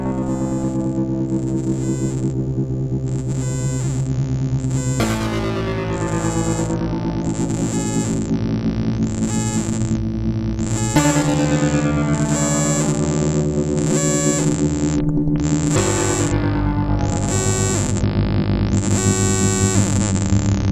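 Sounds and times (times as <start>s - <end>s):
raw oscillator ring modulation: 0.2s - 2.4s, 3.0s - 20.6s.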